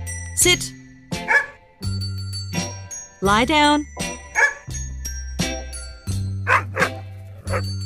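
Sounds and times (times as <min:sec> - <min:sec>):
speech: 0:00.4 - 0:00.8, 0:03.2 - 0:04.0
dog barking during obedience training: 0:01.3 - 0:01.6, 0:04.4 - 0:04.6, 0:06.5 - 0:07.7.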